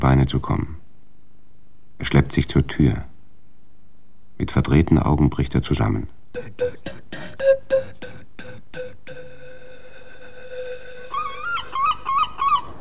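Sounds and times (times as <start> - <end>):
speech: 0.0 - 0.8, 2.0 - 3.1, 4.4 - 7.6
steady low tone: 6.3 - 11.2
seagulls screeching: 10.0 - 12.7.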